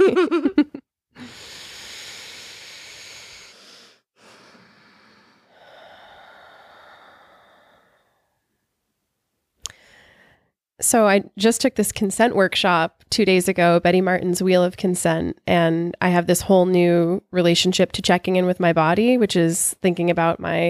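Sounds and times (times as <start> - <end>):
group taking a collective deep breath: 1.2 - 8.4, 9.7 - 10.5
speech: 10.9 - 20.6.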